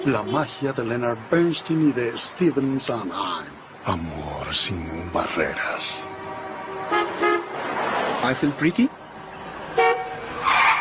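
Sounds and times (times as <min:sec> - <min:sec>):
speech: 0:00.0 - 0:06.2, 0:08.2 - 0:09.0
traffic noise: 0:00.0 - 0:10.7
car horn honking: 0:06.0 - 0:07.6, 0:09.7 - 0:10.7.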